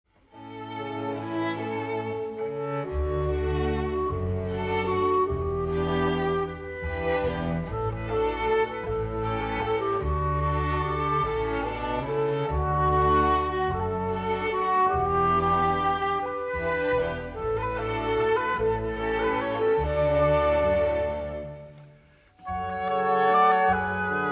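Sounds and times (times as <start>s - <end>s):
orchestra: 0.2s - 24.3s.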